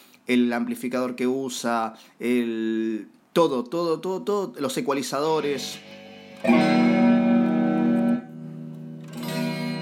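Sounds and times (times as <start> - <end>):
speech: 0.3 - 6.9
electric guitar chords through a multi-effects processor imitating an acoustic guitar: 5.4 - 9.8.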